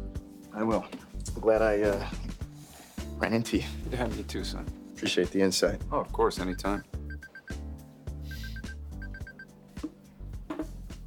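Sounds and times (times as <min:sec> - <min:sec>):
speech: 0:00.6 - 0:02.2, 0:03.2 - 0:07.0
phone ringtone with bright repeated beeps: 0:06.5 - 0:07.6, 0:08.3 - 0:09.5.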